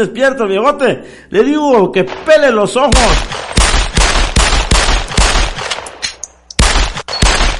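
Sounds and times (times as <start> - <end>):
speech: 0.0 - 3.5
rapid bursts of gunfire: 2.1 - 7.5.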